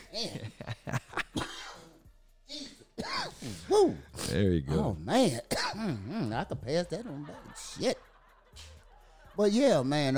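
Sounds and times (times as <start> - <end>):
laughter: 0.0 - 1.4, 6.5 - 10.1
harsh raspy coughing: 0.0 - 2.0, 2.9 - 4.4, 5.2 - 6.3
speech: 0.1 - 1.0, 3.7 - 8.0, 9.4 - 10.1.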